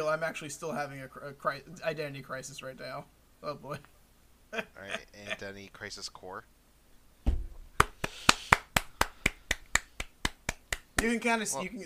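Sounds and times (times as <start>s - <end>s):
speech: 0.0s - 6.6s, 11.0s - 11.8s
sharp hand claps: 7.8s - 11.2s.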